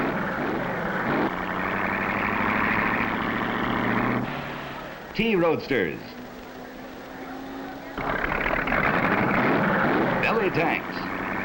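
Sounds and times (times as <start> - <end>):
race car engines roaring on a timed track: 0.0 - 11.4
speech: 5.2 - 6.2, 10.5 - 11.0.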